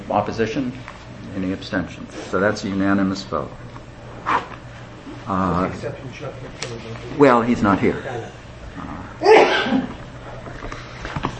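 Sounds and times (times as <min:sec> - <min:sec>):
speech: 0:00.1 - 0:04.4, 0:05.3 - 0:09.9
person sneezing: 0:09.2 - 0:10.0.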